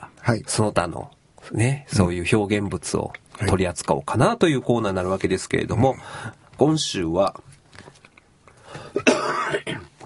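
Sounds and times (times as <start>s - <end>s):
speech: 0.3s - 7.5s
man coughing: 8.9s - 9.9s.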